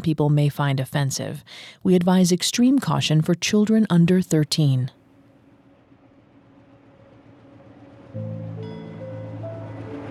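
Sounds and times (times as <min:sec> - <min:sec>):
speech: 0:00.0 - 0:05.0
faint whining tones shifting pitch: 0:05.0 - 0:10.0
train rumbling as it pulls away from a station: 0:05.2 - 0:10.0.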